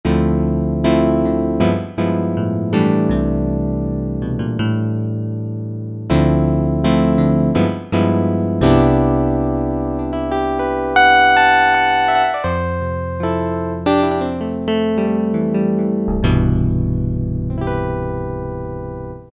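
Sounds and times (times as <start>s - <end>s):
glass piano: 0.1s - 19.3s.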